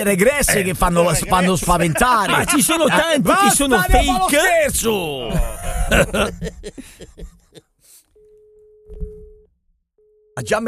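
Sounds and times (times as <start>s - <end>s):
speech: 0.0s - 7.3s, 10.4s - 10.6s
laughter: 0.1s - 7.7s
telephone busy signal: 8.2s - 9.4s.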